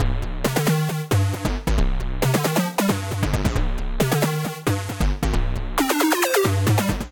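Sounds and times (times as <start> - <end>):
bassline in C minor: 0.0 - 7.0.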